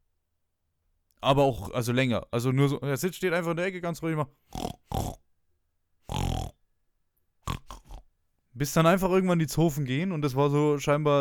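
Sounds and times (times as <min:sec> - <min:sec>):
speech: 0:01.2 - 0:04.8, 0:08.6 - 0:11.1
person imitating a pig's grunting: 0:04.5 - 0:05.2, 0:06.1 - 0:06.6, 0:07.4 - 0:08.1.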